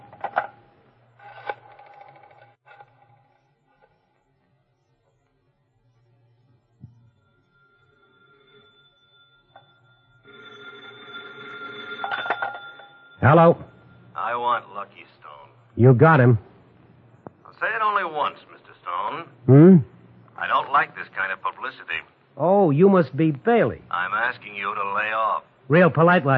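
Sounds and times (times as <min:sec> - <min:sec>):
low steady hum: 0:00.0 - 0:26.3
telephone ringing tone: 0:06.9 - 0:15.0
speech: 0:13.2 - 0:13.6, 0:15.8 - 0:16.5, 0:19.5 - 0:19.9, 0:21.7 - 0:23.8, 0:25.7 - 0:26.3.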